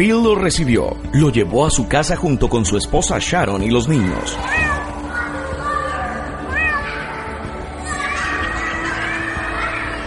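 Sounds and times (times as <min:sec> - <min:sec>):
speech: 0:00.0 - 0:04.8
children's voices: 0:04.0 - 0:10.0
cat meowing in a family home in Devon: 0:04.4 - 0:05.0.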